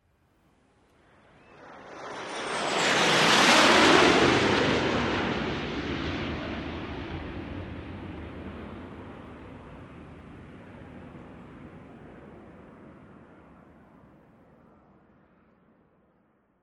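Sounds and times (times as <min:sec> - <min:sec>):
F-18 jet in diamond formation flying by: 0:01.0 - 0:13.7.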